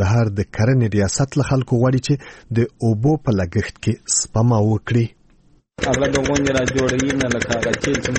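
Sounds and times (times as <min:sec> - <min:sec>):
speech: 0:00.0 - 0:05.2, 0:05.8 - 0:08.1
diesel generator engine pumping water from a deep well to irrigate a wheat field: 0:05.8 - 0:08.1.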